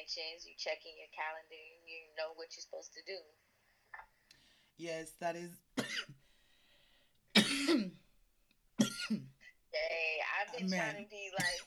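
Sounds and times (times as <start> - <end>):
speech: 0.0 - 3.5, 4.8 - 6.2, 9.1 - 11.6
harsh coughs: 5.8 - 6.2, 7.3 - 8.0, 8.8 - 9.4, 10.6 - 11.6.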